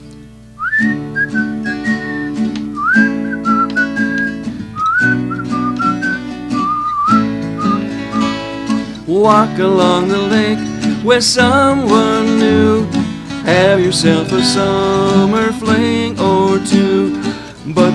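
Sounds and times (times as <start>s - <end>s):
steady instrumental accompaniment: 0.0s - 17.9s
person whistling a bright wavering melody: 0.6s - 8.6s
speech: 9.2s - 16.0s.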